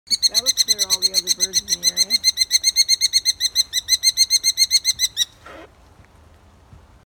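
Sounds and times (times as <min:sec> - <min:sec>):
merlin bird: 0:00.1 - 0:05.7.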